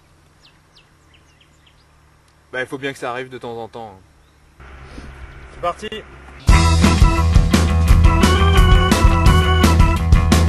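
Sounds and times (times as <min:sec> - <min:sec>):
small birds chirping amid fragrant vegetation in the sunny south: 0:00.0 - 0:06.7
steady low outdoor hum: 0:00.0 - 0:09.4
speech: 0:02.5 - 0:04.1, 0:05.6 - 0:06.2.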